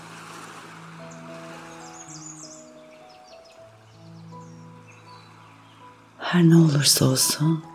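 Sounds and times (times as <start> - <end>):
sea waves washing onto the shore with a gentle swell: 0.0 - 2.2
soft sustained music tones: 0.0 - 7.7
high bird chirps: 1.1 - 6.0
speech: 6.3 - 7.7.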